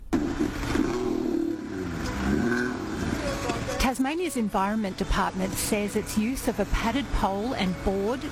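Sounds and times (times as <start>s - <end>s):
giant elephant seal bellowing on a suburban road in southern Tasmania: 0.3s - 3.7s
speech: 3.9s - 8.3s.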